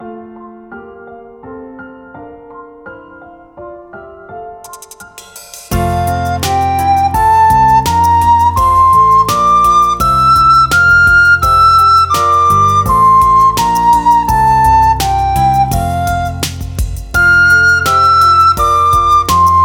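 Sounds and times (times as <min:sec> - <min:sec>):
flute playing an F major scale: 0:05.7 - 0:19.6.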